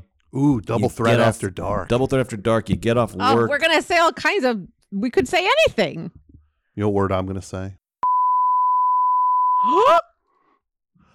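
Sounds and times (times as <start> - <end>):
speech: 0.3 - 6.2, 6.8 - 7.8, 9.6 - 10.1
loud high-pitched censor bleep over a spoken word: 8.0 - 9.9.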